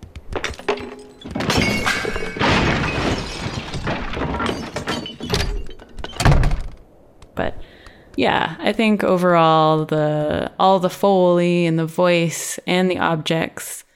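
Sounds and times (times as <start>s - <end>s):
heavy objects dropped at high velocity thunking down: 0.3s - 6.8s
clattering crashes: 0.3s - 6.9s
speech: 8.2s - 13.8s.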